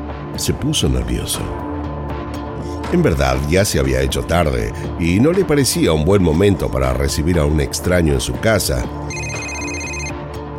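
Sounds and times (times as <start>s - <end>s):
speech: 0.4s - 1.6s, 2.9s - 9.3s
telephone ringing with an electronic tone: 9.1s - 10.2s.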